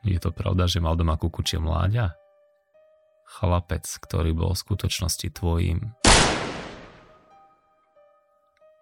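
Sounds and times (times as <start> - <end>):
speech: 0.1 - 2.2, 3.3 - 6.4
single loud gunshot: 6.0 - 7.2
bullet boring into a wall: 6.1 - 7.1.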